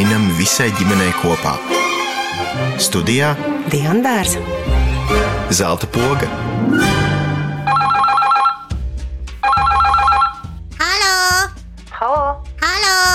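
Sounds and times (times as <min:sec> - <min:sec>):
speech: 0:00.4 - 0:01.8, 0:02.6 - 0:07.2
telephone ringing: 0:07.6 - 0:08.7, 0:09.4 - 0:10.5
high sing-song babbling voice: 0:10.8 - 0:13.1.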